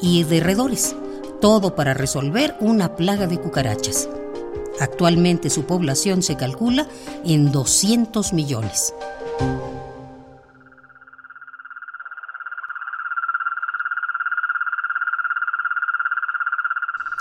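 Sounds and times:
speech: 0:00.0 - 0:04.2, 0:04.8 - 0:09.6
cane toad trilling croak: 0:10.5 - 0:17.1.

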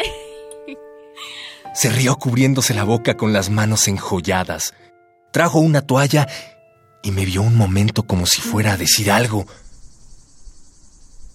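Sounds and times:
speech: 0:00.7 - 0:09.6
cicadas singing: 0:07.1 - 0:11.3.

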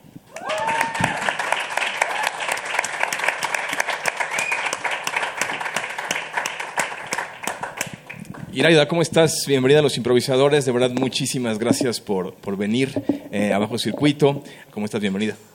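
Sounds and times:
person whooping or cheering: 0:00.3 - 0:01.2
audience applause welcoming a guest: 0:00.3 - 0:08.3
speech: 0:08.6 - 0:15.5.

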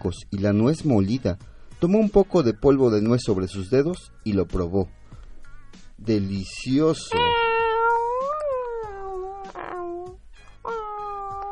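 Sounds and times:
speech: 0:00.0 - 0:05.0, 0:06.0 - 0:07.3
woman imitating a cat yowling: 0:07.1 - 0:11.5.

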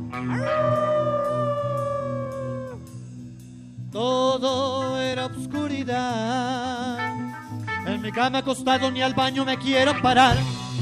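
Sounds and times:
speech: 0:00.1 - 0:00.9, 0:03.9 - 0:07.2, 0:08.0 - 0:10.7
long howl: 0:00.2 - 0:02.8.

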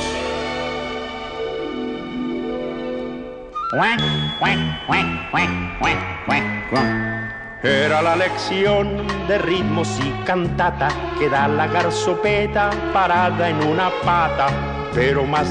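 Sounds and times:
sustained melodic musical passage: 0:00.7 - 0:15.4
speech: 0:03.7 - 0:15.4
loud rhythmic duck-like quacks: 0:03.8 - 0:06.6.

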